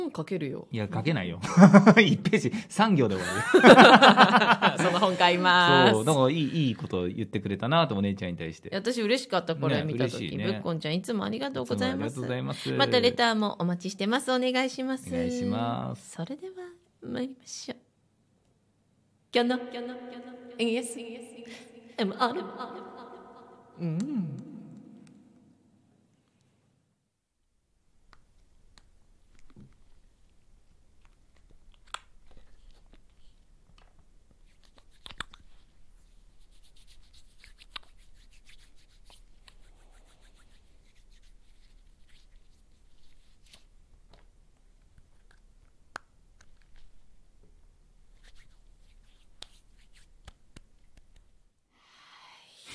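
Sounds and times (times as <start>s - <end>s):
speech: 0.1s - 17.8s, 19.3s - 22.9s, 23.8s - 24.5s
laughter: 1.4s - 2.5s, 3.1s - 6.4s, 11.8s - 13.2s
hand sanitizer gel rubbed between hands: 31.0s - 45.8s, 48.1s - 51.3s.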